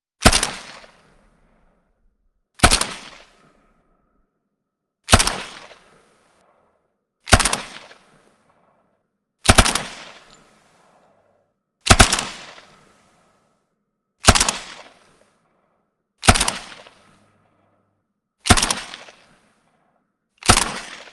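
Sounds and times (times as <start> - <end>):
WW2 M3 Grease Gun submachine gun single shot: 0.2 - 1.1, 2.6 - 3.5, 5.1 - 6.0, 7.3 - 8.2, 9.4 - 10.5, 11.8 - 12.8, 14.2 - 15.2, 16.2 - 17.2, 18.4 - 19.4, 20.4 - 21.1.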